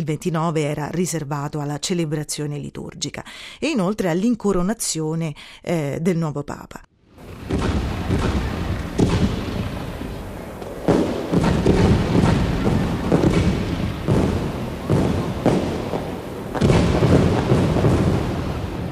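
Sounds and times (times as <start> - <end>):
speech: 0.0 - 8.5
fireworks bursting at Castel Sant'Angelo during a festival: 7.1 - 18.9.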